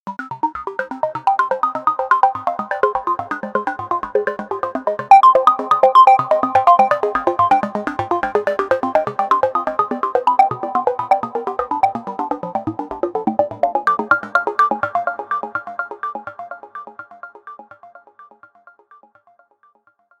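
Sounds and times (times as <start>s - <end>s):
resonant synth arpeggio: 1.3s - 15.4s.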